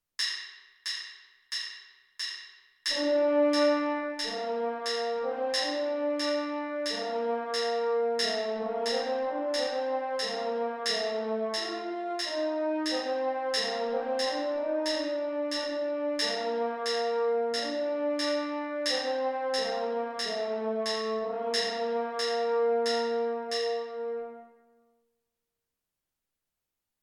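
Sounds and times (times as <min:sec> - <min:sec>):
french horn: 0:02.9 - 0:24.9.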